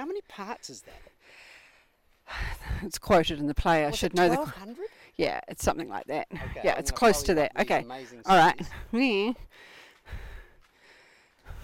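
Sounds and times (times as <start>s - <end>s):
speech: 0.0s - 1.5s, 2.3s - 10.2s
heavy labored breathing of people climbing stairs: 0.8s - 2.9s, 8.0s - 11.6s.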